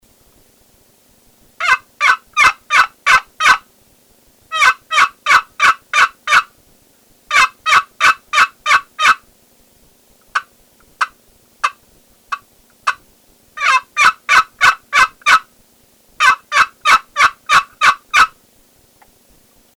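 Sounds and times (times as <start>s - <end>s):
walnut dual hen call: 1.6s - 3.6s, 4.5s - 6.5s, 7.3s - 9.2s, 13.6s - 15.5s, 16.2s - 18.4s.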